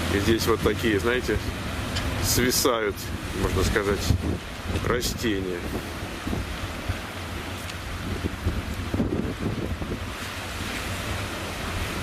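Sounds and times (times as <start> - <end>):
surf-like noise: 0.0 - 12.0
speech: 0.1 - 6.6
strong gusty wind buffeting the microphone: 2.9 - 12.0.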